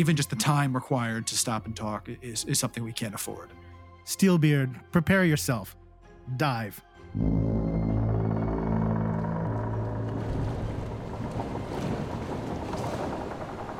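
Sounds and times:
speech: 0:00.0 - 0:07.9
low drawn-out creaking of a wooden ship: 0:07.2 - 0:13.7.

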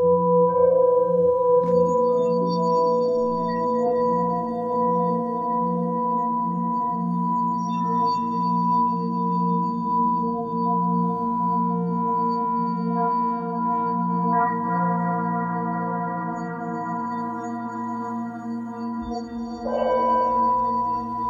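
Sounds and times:
singing bowls ringing in long overlapping tones: 0:00.1 - 0:21.2.

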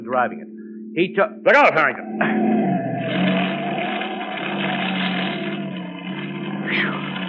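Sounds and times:
speech: 0:00.1 - 0:03.3, 0:06.7 - 0:07.2
car engine roaring past on oily road: 0:01.5 - 0:07.2
car tire squeal on slippery oily road: 0:02.0 - 0:07.2.

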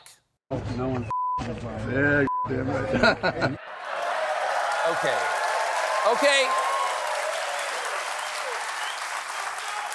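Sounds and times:
speech: 0:00.5 - 0:03.7, 0:04.8 - 0:05.4, 0:06.0 - 0:06.6
laughter: 0:02.6 - 0:04.4
audience applause following a speech: 0:03.6 - 0:09.9.

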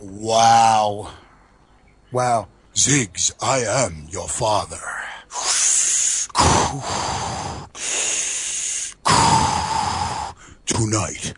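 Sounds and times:
speech: 0:00.0 - 0:01.2, 0:02.1 - 0:05.7, 0:10.7 - 0:11.3
heavy raspy breathing against the microphone: 0:04.8 - 0:10.7.

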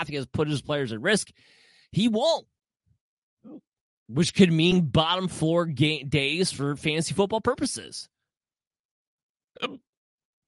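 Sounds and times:
speech: 0:00.0 - 0:02.5, 0:03.4 - 0:08.1, 0:09.6 - 0:09.9
hiccup: 0:03.4 - 0:03.7, 0:09.6 - 0:10.0.

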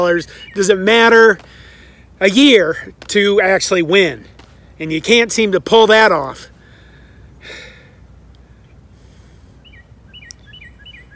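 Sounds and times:
speech: 0:00.0 - 0:01.6, 0:02.2 - 0:06.5
birds chirping: 0:00.0 - 0:11.1
person exhaling forcefully while practicing breathing: 0:06.6 - 0:08.0.

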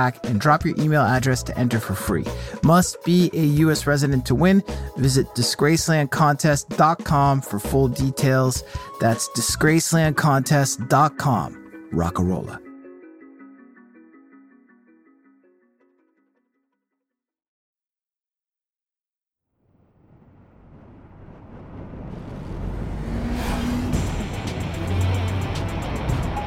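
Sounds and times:
speech: 0:00.0 - 0:12.6
1975 Corvette Stingray speeding along a coastal highway: 0:20.2 - 0:26.4.

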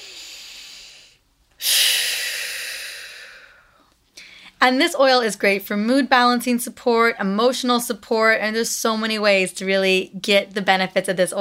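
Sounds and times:
person taking a deep belly breath: 0:00.0 - 0:04.6
speech: 0:04.6 - 0:11.3.

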